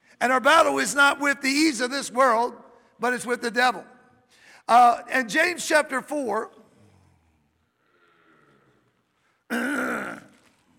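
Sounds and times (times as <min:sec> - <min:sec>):
speech: 0:00.2 - 0:04.0, 0:04.7 - 0:06.6
person clearing throat: 0:09.5 - 0:10.6.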